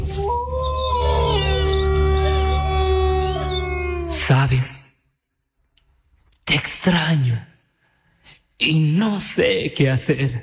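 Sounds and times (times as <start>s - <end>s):
wolf howl: 0.0s - 4.4s
speech: 4.3s - 4.8s, 6.8s - 7.5s, 8.6s - 10.4s.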